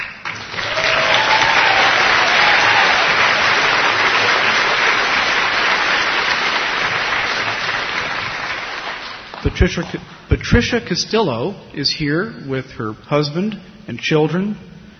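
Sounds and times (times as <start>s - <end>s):
sustained audience applause from a crowd: 0.0s - 10.0s
speech: 9.5s - 14.7s.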